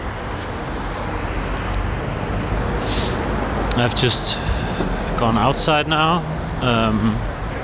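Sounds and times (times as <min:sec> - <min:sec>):
street traffic passing outdoors: 0:00.0 - 0:07.6
speech: 0:03.8 - 0:07.3.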